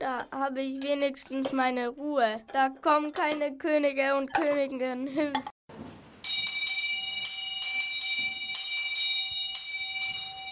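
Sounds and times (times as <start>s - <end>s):
speech: 0.0s - 5.6s
servants' call bell ringing: 6.2s - 10.5s.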